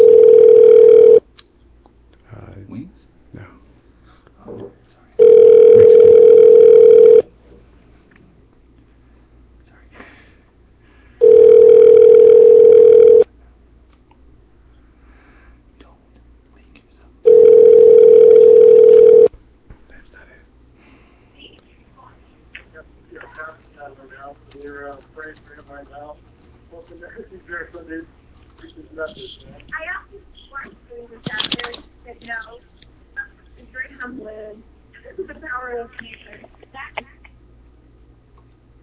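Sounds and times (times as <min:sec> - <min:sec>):
telephone dial tone during a prank call: 0:00.0 - 0:01.2, 0:05.2 - 0:07.2, 0:11.2 - 0:13.3, 0:17.3 - 0:19.3.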